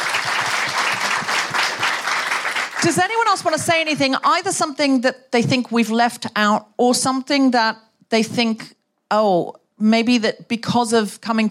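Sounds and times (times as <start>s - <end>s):
audience applause at a town hall event: 0.0s - 2.9s
speech: 2.8s - 11.4s.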